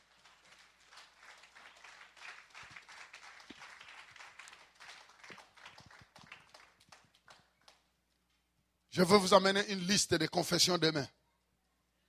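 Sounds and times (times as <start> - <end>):
audience at a church service applauding: 0.0 - 7.8
speech: 9.0 - 11.2.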